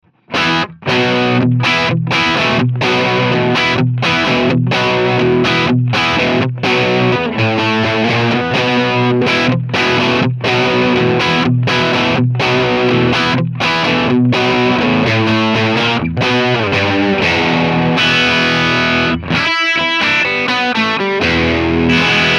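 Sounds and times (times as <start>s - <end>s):
dirty electric guitar through Matamp GT2 with PRS Custom 24: 0.0s - 22.3s.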